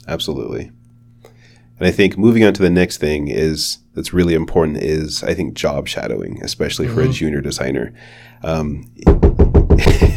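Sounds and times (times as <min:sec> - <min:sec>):
speech: 0:00.0 - 0:00.8, 0:01.8 - 0:10.1
knuckles knocking on a table: 0:09.0 - 0:10.0.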